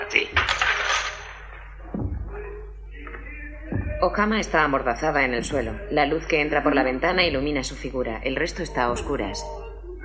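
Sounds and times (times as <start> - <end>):
speech: 0.1 - 0.7, 4.0 - 9.6
handful of coins landing on a floor: 0.4 - 1.5.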